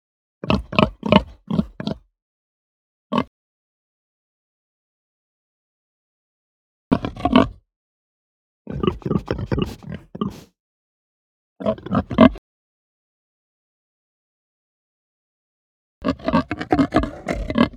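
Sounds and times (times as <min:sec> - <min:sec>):
Hampshire pig grunting: 0:00.5 - 0:02.0, 0:06.9 - 0:07.6, 0:08.7 - 0:10.5, 0:11.6 - 0:12.4, 0:16.0 - 0:17.7.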